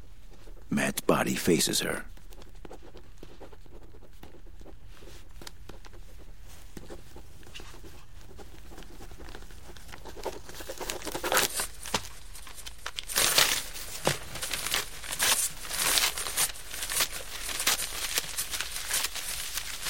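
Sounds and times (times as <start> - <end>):
speech: 0.7 - 2.2
paper crinkling and crumpling: 2.2 - 19.8.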